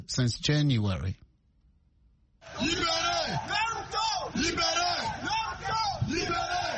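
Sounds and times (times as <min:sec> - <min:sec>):
speech: 0:00.1 - 0:01.2, 0:02.4 - 0:03.7, 0:04.3 - 0:06.7
large crowd of protesters shouting: 0:02.4 - 0:06.7.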